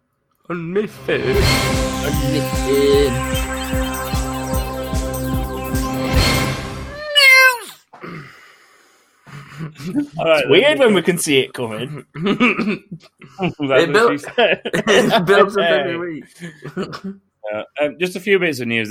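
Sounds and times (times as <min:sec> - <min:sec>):
speech: 0:00.5 - 0:03.8, 0:09.6 - 0:18.8
steady rhythmic tonal sound: 0:00.9 - 0:07.0
cat meowing: 0:07.0 - 0:07.8.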